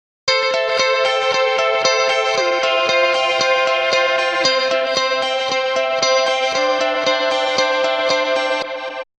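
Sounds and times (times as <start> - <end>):
mixed guitar: 0.3 - 9.1.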